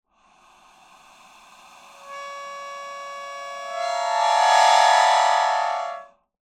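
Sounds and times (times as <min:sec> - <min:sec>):
melodica playing clusters: 0:02.0 - 0:06.1.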